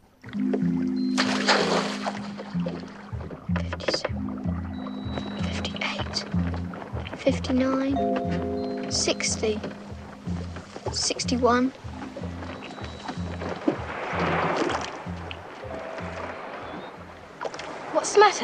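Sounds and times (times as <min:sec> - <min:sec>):
water sloshing around a rowing boat on a lake: 0:00.2 - 0:18.4
oars knocking and creaking in a rowing boat on a lake: 0:00.3 - 0:18.0
steady low hum: 0:00.6 - 0:17.5
anchor dropped from the stern of a rowing boat: 0:01.1 - 0:04.1, 0:11.9 - 0:17.9
speech: 0:07.3 - 0:09.8, 0:11.0 - 0:11.8, 0:18.2 - 0:18.4.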